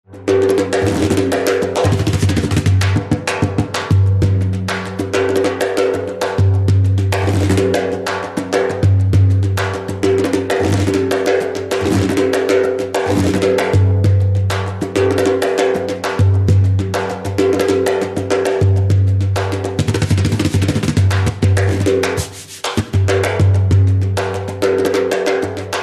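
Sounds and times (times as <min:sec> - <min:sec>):
frame drum: 0:00.1 - 0:25.8.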